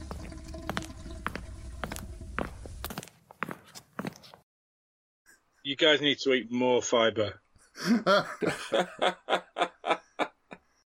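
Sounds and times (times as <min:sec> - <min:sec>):
toilet flushing upstairs: 0:00.0 - 0:02.9
water dripping and trickling as a toilet tank refills: 0:00.0 - 0:03.0
speech: 0:05.7 - 0:09.7
laughter: 0:07.8 - 0:10.6.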